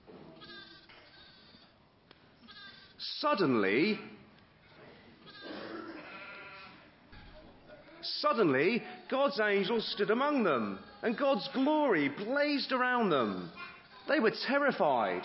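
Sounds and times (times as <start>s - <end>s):
sheep bleating: 0.4s - 1.7s, 2.4s - 3.0s, 5.2s - 6.9s, 10.3s - 12.4s, 13.0s - 15.2s
speech: 3.1s - 4.1s, 8.3s - 15.2s.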